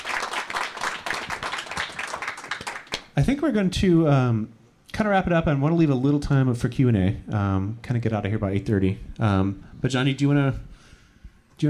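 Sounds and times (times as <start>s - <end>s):
live audience applauding: 0.0s - 3.2s
speech: 3.2s - 10.7s.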